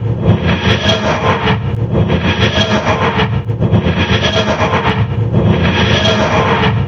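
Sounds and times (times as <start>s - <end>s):
damaged tardis flight loop: 0.0s - 6.8s.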